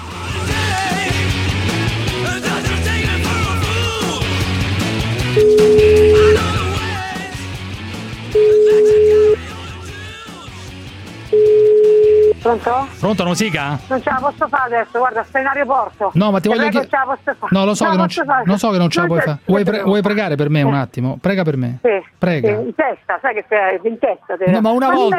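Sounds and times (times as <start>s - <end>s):
loud music: 0.0s - 19.3s
telephone line ringing while placing a call: 5.4s - 6.5s, 8.4s - 9.4s, 11.4s - 12.4s
speech: 12.5s - 25.1s.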